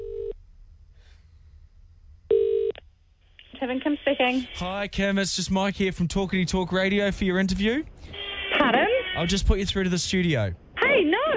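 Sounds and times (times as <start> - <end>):
low hum: 0.0 - 11.3
telephone line ring tones on an outgoing call: 2.3 - 2.8
speech: 3.6 - 11.3.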